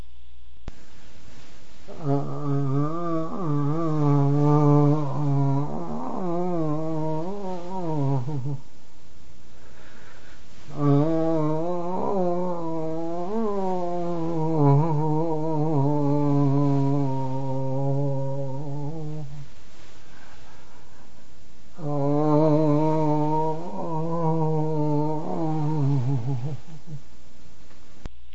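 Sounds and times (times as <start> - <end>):
long human moans illustrating Reichian therapy: 1.9 - 8.7, 10.7 - 19.5, 21.7 - 27.1.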